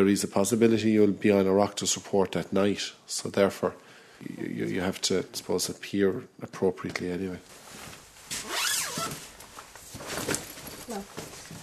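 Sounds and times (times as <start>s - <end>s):
speech: 0.0s - 7.6s
zipper being zipped up: 8.4s - 9.2s.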